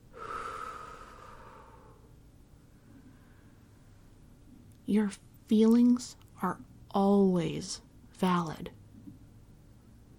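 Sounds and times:
soft slow airy exhale with faint whistly tone: 0:00.1 - 0:02.1
speech: 0:04.9 - 0:08.8.

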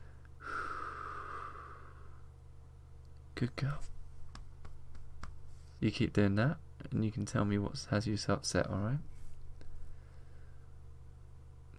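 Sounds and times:
soft steady exhale after a held breath: 0:00.0 - 0:02.2
speech: 0:03.4 - 0:04.0, 0:05.8 - 0:09.1.

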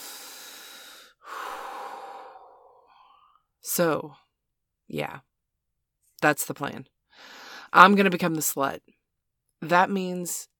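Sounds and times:
deep breathing in and out: 0:00.0 - 0:03.4
speech: 0:03.7 - 0:04.2, 0:04.9 - 0:05.3, 0:06.2 - 0:09.0, 0:09.6 - 0:10.5.

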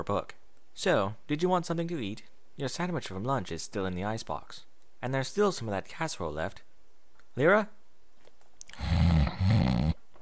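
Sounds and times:
speech: 0:00.0 - 0:06.7, 0:07.4 - 0:07.8
person snoring: 0:08.7 - 0:10.0.

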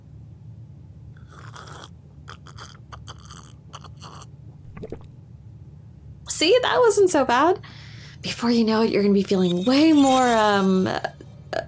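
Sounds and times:
low steady hum: 0:00.0 - 0:11.6
person taking a small sip of a drink: 0:01.2 - 0:05.1
quick swallow: 0:01.2 - 0:05.1
speech: 0:06.4 - 0:11.2.

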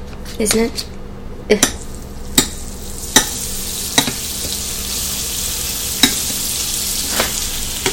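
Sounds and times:
speech: 0:00.4 - 0:01.8
food frying in a pan: 0:01.8 - 0:07.9.

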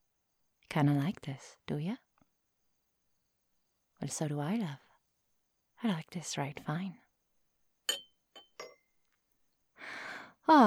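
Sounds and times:
speech: 0:00.7 - 0:02.0, 0:04.0 - 0:04.8, 0:05.8 - 0:07.0, 0:10.5 - 0:10.6
wine glasses clinking: 0:07.9 - 0:08.9.

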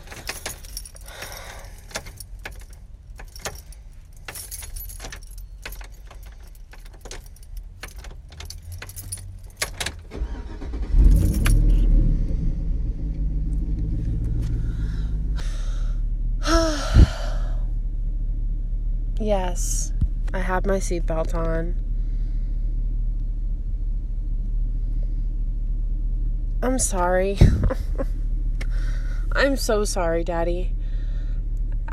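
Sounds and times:
keys jingling and clinking: 0:00.0 - 0:11.9
car engine turning over and idling: 0:00.0 - 0:31.9
speech: 0:19.3 - 0:19.8, 0:20.5 - 0:21.9, 0:26.6 - 0:28.1, 0:29.4 - 0:30.8.

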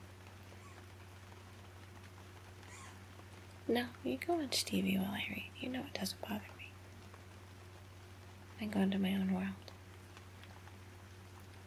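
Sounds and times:
low hum: 0:00.0 - 0:11.6
soft steady rain heard faintly from indoors: 0:00.0 - 0:11.6
speech: 0:03.7 - 0:06.6, 0:08.6 - 0:09.7.

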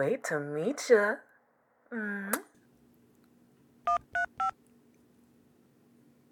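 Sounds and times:
speech: 0:00.0 - 0:01.3, 0:01.9 - 0:02.5
telephone keypad dialing tones dialing a hotline code: 0:03.9 - 0:04.6.

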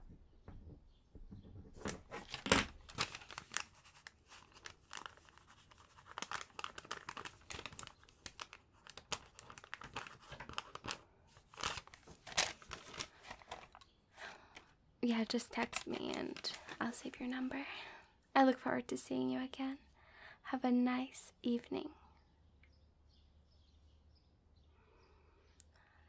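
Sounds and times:
paper rustling and crinkling: 0:01.7 - 0:14.7, 0:15.5 - 0:17.5
speech: 0:15.1 - 0:19.8, 0:20.4 - 0:22.0.

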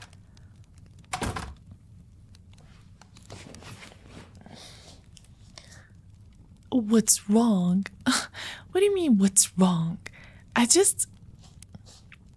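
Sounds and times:
door opening with a solid thunk: 0:01.2 - 0:01.6
soft shuffling movement of someone stepping in: 0:02.6 - 0:05.0
speech: 0:06.8 - 0:11.1.

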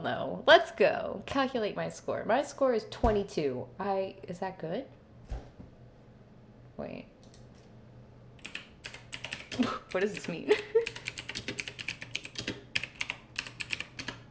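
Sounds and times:
speech: 0:00.0 - 0:05.0, 0:06.8 - 0:07.1, 0:09.6 - 0:11.0
mechanical keyboard typing: 0:08.4 - 0:14.2.

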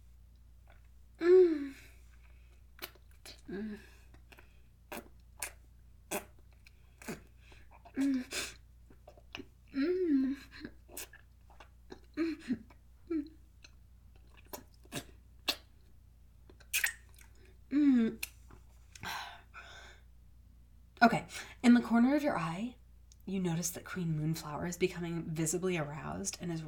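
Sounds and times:
soft hummed moans: 0:00.7 - 0:05.1, 0:06.7 - 0:11.0, 0:11.9 - 0:13.7, 0:17.6 - 0:19.8
speech: 0:03.5 - 0:04.0, 0:22.0 - 0:26.6
person wetly sucking on their fingers: 0:16.6 - 0:17.2.

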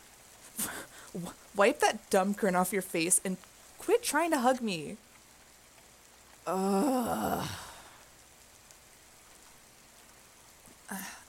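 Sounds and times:
light rain hissing: 0:00.0 - 0:11.2
speech: 0:01.2 - 0:05.0, 0:06.4 - 0:07.6
drawn-out groaning vocal sound: 0:06.5 - 0:08.0.

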